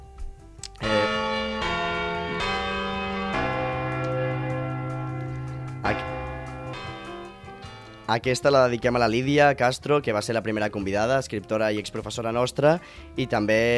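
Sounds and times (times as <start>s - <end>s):
church bell tolling: 0.8s - 8.7s
speech: 8.1s - 13.7s.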